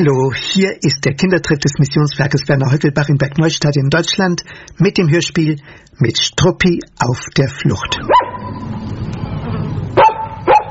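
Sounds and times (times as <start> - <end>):
speech: 0.0 - 8.2
dog barking: 8.1 - 8.6, 10.0 - 10.6.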